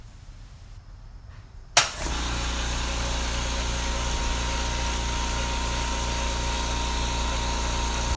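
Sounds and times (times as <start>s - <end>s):
new compressor running: 1.8s - 8.1s.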